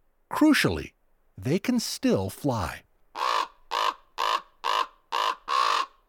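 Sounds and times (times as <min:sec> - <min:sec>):
speech: 0:00.4 - 0:02.8
common raven calling with harsh, croaking caws: 0:03.1 - 0:06.0.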